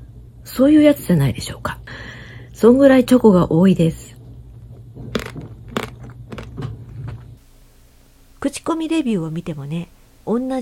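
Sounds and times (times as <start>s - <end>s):
speech: 0.4s - 1.8s, 2.6s - 4.0s, 8.4s - 10.6s
biting into a hard ice cream bar with thick chocolate coating: 5.2s - 6.6s.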